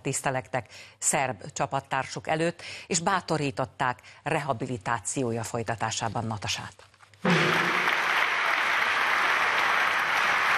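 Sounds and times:
speech: 0:00.0 - 0:07.7
standing ovation applause from a large crowd in a stadium: 0:07.3 - 0:10.5.

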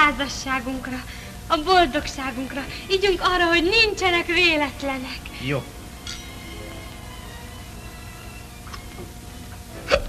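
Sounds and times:
speech: 0:00.1 - 0:06.2
soft ringing tone like a glass: 0:06.0 - 0:08.4
hiccup caused by carbonation of champagne just drunk: 0:09.9 - 0:10.0.

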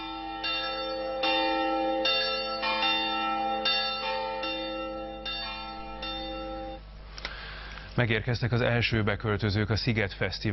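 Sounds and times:
church bells pealing: 0:00.0 - 0:06.8
speech: 0:08.0 - 0:10.5.

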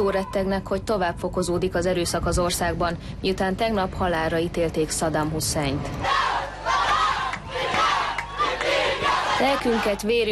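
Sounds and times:
speech: 0:00.0 - 0:06.3, 0:09.4 - 0:10.3
crowd chanting slogans at a protest: 0:06.0 - 0:10.1.

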